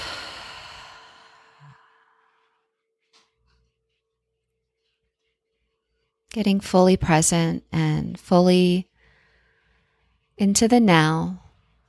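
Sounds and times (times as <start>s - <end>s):
deep breathing in a guided relaxation exercise: 0.0s - 2.6s
speech: 6.3s - 8.9s, 10.4s - 11.4s.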